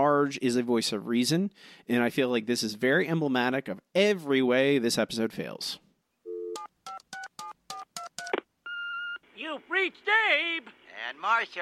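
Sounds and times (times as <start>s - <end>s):
speech: 0.2s - 5.8s, 9.5s - 11.6s
telephone keypad beeps dialing a phone number: 6.3s - 9.2s.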